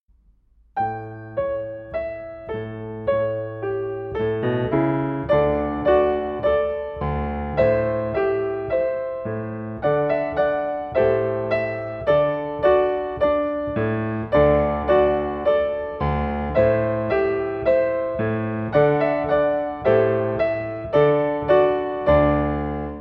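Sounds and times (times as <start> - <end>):
live piano accompaniment: 0.7 - 22.9.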